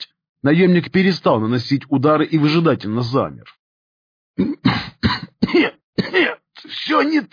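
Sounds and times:
speech: 0.4s - 3.6s, 4.4s - 7.3s
bound military major coughing harshly: 4.4s - 6.5s.

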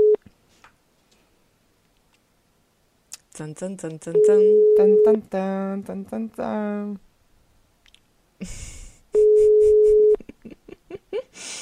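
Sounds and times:
people talking: 3.2s - 7.0s
telephone ringing tones: 9.2s - 10.2s.

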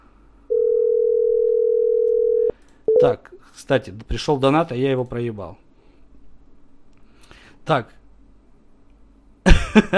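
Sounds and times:
telephone dial tone while redialing: 0.5s - 2.5s
speech: 3.0s - 5.6s, 7.7s - 8.0s, 9.5s - 9.9s.

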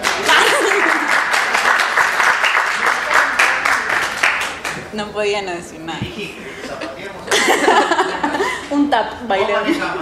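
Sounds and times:
audience applause at a poetry reading and book presentation: 0.0s - 4.8s
laughter: 0.1s - 1.7s, 6.1s - 10.0s
speech: 5.0s - 6.4s, 7.4s - 8.1s, 8.7s - 10.0s.

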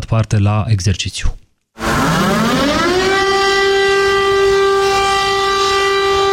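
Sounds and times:
speech: 0.1s - 1.4s
civil defense siren wailing during a public warning test in Bucharest: 1.8s - 6.3s.

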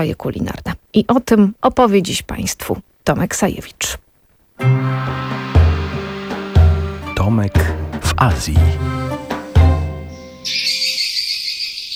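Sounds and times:
speech: 0.0s - 4.0s, 4.6s - 5.5s, 7.2s - 9.3s
low tonal sound: 4.6s - 10.4s
swiftlets calling in a buzzing chorus: 8.5s - 11.9s.

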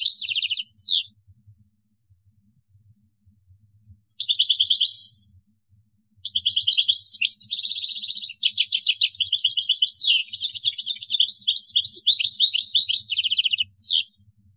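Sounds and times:
European goldfinch song: 0.0s - 1.2s, 4.1s - 5.4s, 6.1s - 14.3s.

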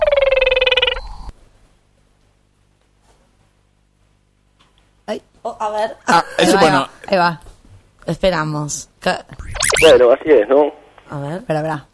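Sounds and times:
small frog from Brazil calling: 0.0s - 1.3s
speech: 5.1s - 11.9s.

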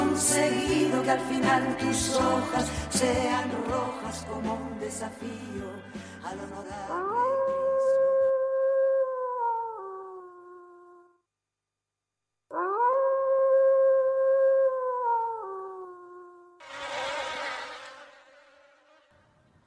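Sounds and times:
speech: 0.2s - 7.6s
wolf howling: 6.9s - 10.8s, 12.5s - 18.3s.

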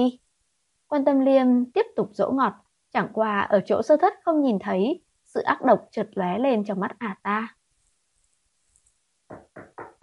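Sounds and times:
speech: 0.0s - 0.2s, 0.9s - 7.6s
firm knocking on a door: 9.3s - 10.0s.

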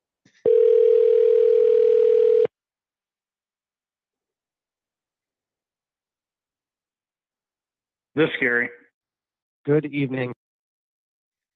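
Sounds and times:
telephone ringing on a call to an alarm company: 0.5s - 2.5s
speech: 8.2s - 8.8s, 9.6s - 10.4s.

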